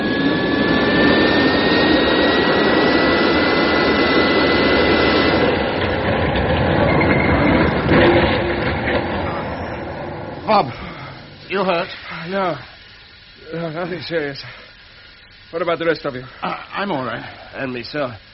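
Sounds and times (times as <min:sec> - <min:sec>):
spacecraft engine roaring while descending toward rocky ground: 0:00.0 - 0:14.4
speech: 0:11.6 - 0:12.7, 0:13.5 - 0:14.6, 0:15.5 - 0:18.3.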